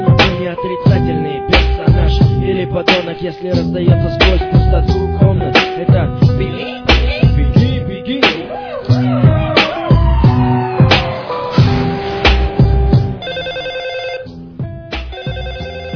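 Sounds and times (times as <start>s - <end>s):
rhythmic hip-hop beat with thumping bass hits: 0.0s - 13.5s, 14.2s - 15.9s
speech: 0.6s - 1.2s, 2.7s - 5.0s
telephone ringing: 13.2s - 14.4s, 15.1s - 15.9s.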